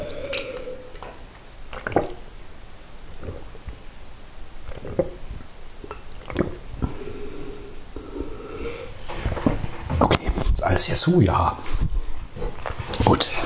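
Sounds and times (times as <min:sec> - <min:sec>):
faint mouth noises: 0:00.0 - 0:02.4, 0:03.0 - 0:10.6
gulping and swallowing water: 0:00.0 - 0:02.4, 0:03.0 - 0:03.9, 0:04.6 - 0:08.8
speech: 0:10.8 - 0:11.8.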